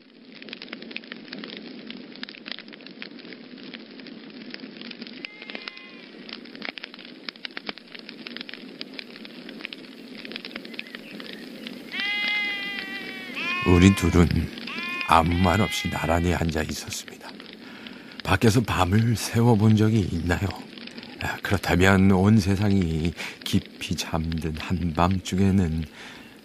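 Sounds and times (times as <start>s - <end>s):
campfire crackling as it is built up: 0.0s - 26.4s
animal bleats: 5.2s - 6.4s, 11.9s - 17.0s, 20.9s - 21.5s
speech: 13.7s - 17.2s, 18.3s - 20.6s, 21.5s - 26.2s.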